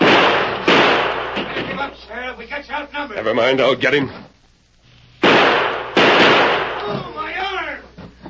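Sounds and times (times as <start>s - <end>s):
rifle gunshots in an old radio drama: 0.0s - 1.9s, 5.2s - 6.9s
speech: 2.3s - 4.3s.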